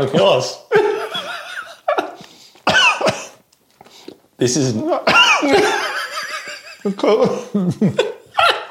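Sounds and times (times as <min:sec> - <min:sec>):
speech: 0:00.0 - 0:00.6, 0:04.4 - 0:05.9, 0:06.8 - 0:08.2
laughter: 0:00.7 - 0:02.2, 0:05.3 - 0:08.7
person coughing harshly after choking on flour from bread: 0:02.7 - 0:03.4, 0:05.1 - 0:05.8.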